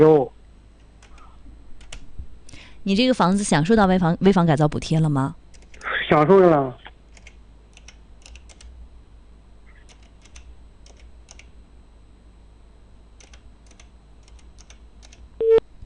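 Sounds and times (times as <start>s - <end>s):
speech: 0.0s - 0.4s, 2.8s - 5.4s, 6.1s - 6.8s
quiet hum: 0.0s - 15.8s
phone keypad clicks dialing a number: 7.1s - 8.7s, 9.8s - 11.5s, 13.2s - 15.2s
electronic phone tone as call goes through: 15.4s - 15.6s.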